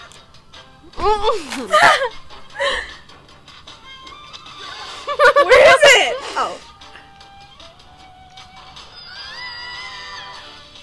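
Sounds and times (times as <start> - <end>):
speech: 1.0 - 2.8, 5.4 - 6.7
classic stock scream sound effect: 9.0 - 10.6.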